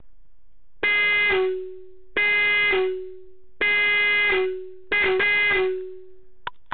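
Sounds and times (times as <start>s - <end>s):
12V 400Hz 110dB 130mm disc horn honking: 0.8s - 6.2s.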